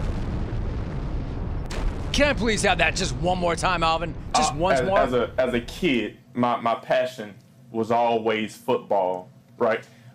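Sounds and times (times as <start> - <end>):
explosion sound effect: 0.0 - 5.4
speech: 2.2 - 10.0.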